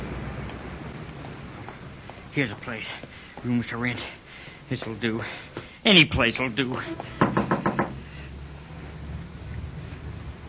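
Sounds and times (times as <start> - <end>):
faint hum: 0.0 - 10.4
speech: 2.4 - 7.4
firm knocks on the wooden door of a house: 7.2 - 8.0.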